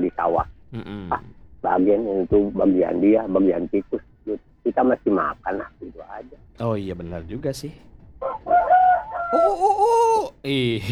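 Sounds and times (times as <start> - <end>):
speech: 0.1 - 8.6, 9.3 - 10.8
neighbour's rooster crowing: 8.2 - 10.2.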